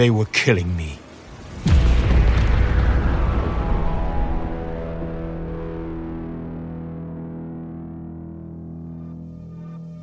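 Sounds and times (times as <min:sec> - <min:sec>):
speech: 0:00.0 - 0:01.0, 0:01.6 - 0:01.8
spacecraft thruster explosion with deep distorted boom: 0:01.3 - 0:07.3.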